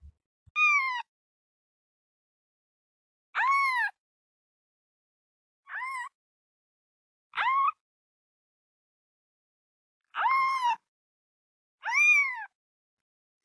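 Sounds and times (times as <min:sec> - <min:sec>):
kitten meowing in high thin cries: 0:00.6 - 0:01.0, 0:03.4 - 0:03.9, 0:05.7 - 0:06.1, 0:07.4 - 0:07.8, 0:10.2 - 0:10.8, 0:11.8 - 0:12.5.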